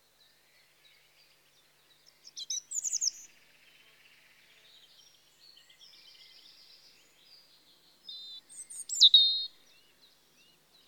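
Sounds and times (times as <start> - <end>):
European robin singing in spring: 2.3 - 3.3, 8.1 - 9.6.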